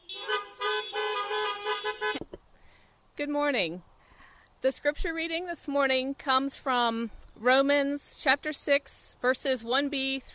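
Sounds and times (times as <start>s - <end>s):
car horns honking in a greeting: 0.0s - 2.3s
speech: 3.2s - 3.9s, 4.6s - 10.3s.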